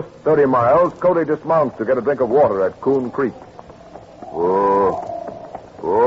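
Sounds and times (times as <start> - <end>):
speech: 0.2 - 3.5, 5.8 - 6.0
government mule braying: 3.3 - 6.0.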